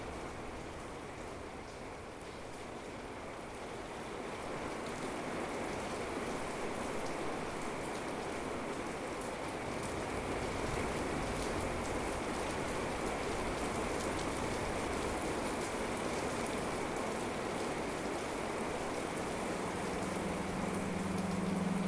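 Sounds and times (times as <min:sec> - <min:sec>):
rain falling: 0:00.0 - 0:21.8
soft rushing like wind: 0:18.6 - 0:21.8
low hum: 0:19.2 - 0:21.8
faint upper middle tone: 0:19.3 - 0:21.8.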